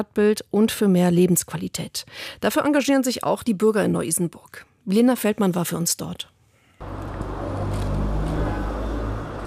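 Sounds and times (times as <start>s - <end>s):
speech: 0.0s - 7.0s
cars rushing past on a busy street: 6.8s - 9.4s.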